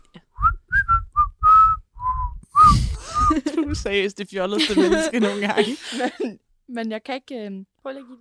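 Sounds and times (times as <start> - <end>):
person whistling a short halting tune: 0.0 - 3.4
laughter: 2.9 - 6.4
speech: 3.7 - 8.2.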